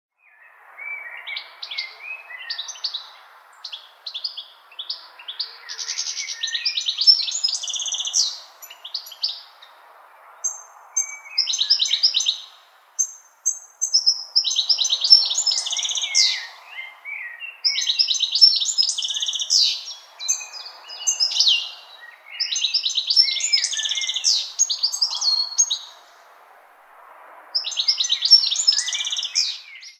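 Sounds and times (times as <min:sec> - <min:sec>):
birds singing ringtone: 0:00.1 - 0:26.3, 0:27.6 - 0:29.9.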